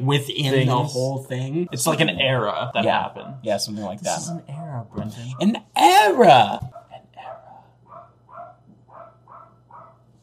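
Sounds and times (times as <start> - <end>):
speech: 0.0 - 6.7
wolves barking: 1.7 - 4.5, 6.7 - 10.0.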